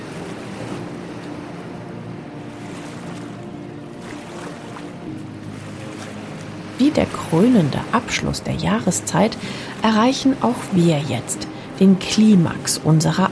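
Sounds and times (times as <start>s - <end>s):
rough ocean waves surging around a small paddled boat: 0.0s - 13.3s
water splashes: 0.0s - 13.3s
speech: 6.8s - 13.3s.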